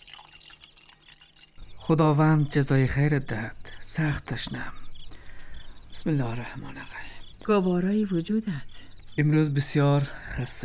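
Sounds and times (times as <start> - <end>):
water poured into a cup: 0.0 - 1.6
speech: 1.9 - 4.8, 6.0 - 10.6.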